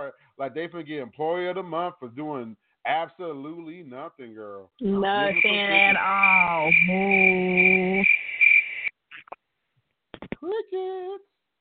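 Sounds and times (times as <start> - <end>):
speech: 0.0 - 8.1, 10.4 - 11.3
brief warbling tone: 5.0 - 8.9
steady high-pitched cricket trill: 5.2 - 8.9.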